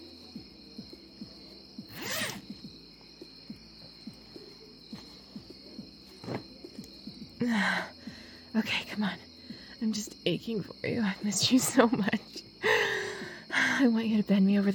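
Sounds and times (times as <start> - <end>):
quiet hum: 0.0 - 14.7
zipper at the back of a dress unzipping: 1.9 - 2.5
speech: 7.4 - 8.0, 8.6 - 12.2, 13.8 - 14.7.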